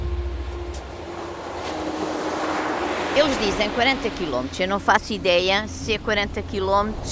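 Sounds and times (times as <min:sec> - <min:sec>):
sea waves washing onto a shore: 0:00.4 - 0:05.5
speech: 0:03.2 - 0:07.1.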